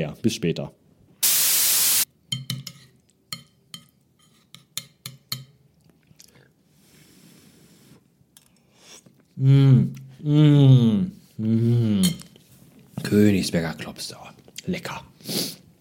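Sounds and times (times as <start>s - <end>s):
speech: 0.0s - 0.8s, 9.4s - 12.2s, 13.1s - 15.5s
loud hissing of food from a microwave: 1.2s - 2.0s.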